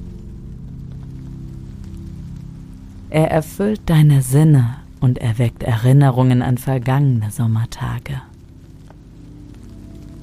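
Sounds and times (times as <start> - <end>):
summer rain falling on sun-warmed asphalt: 0.0 - 6.5, 7.2 - 10.2
speech: 3.1 - 8.3.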